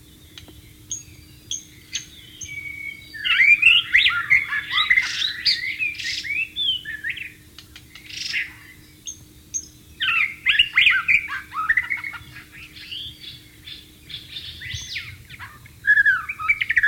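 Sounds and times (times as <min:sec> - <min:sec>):
wild White-rumped shama singing rich warbled and whistled notes: 0:00.9 - 0:16.8.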